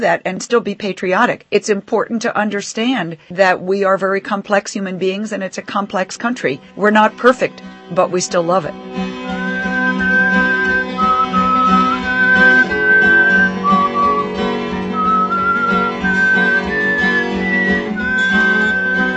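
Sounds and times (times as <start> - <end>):
speech: 0.0 - 9.2
soft instrumental accompaniment: 6.0 - 19.1
man whistling a slow clear melody: 9.3 - 19.1.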